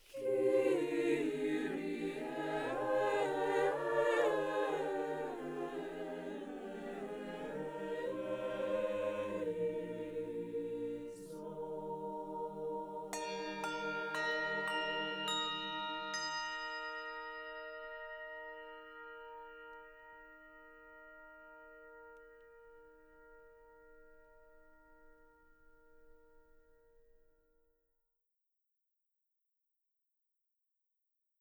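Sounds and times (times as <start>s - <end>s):
anechoic choir singing: 0.0s - 16.4s.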